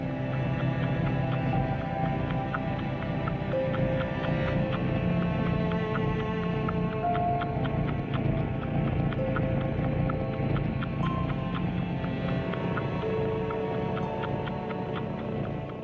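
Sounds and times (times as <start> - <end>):
clip-clop-like ticking beat: 0.0 - 15.8
gentle instrumental music composed for cats: 0.0 - 15.8.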